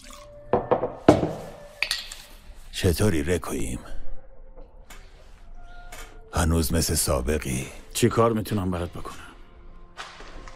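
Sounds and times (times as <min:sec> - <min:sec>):
drink poured into a glass: 0:00.0 - 0:00.4
glassware clinking: 0:00.5 - 0:02.3
speech: 0:00.8 - 0:01.4, 0:02.8 - 0:04.0, 0:06.4 - 0:09.3.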